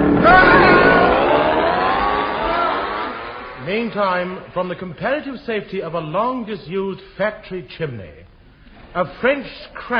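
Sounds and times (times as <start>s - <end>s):
small outboard motor fitted onto a piano revving: 0.1s - 3.6s
speech: 3.7s - 8.2s, 8.9s - 9.9s.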